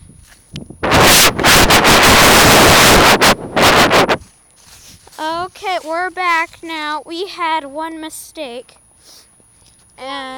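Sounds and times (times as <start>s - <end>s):
wind buffeting a microphone outdoors: 0.0s - 5.6s
speech: 5.8s - 9.2s, 10.0s - 10.3s.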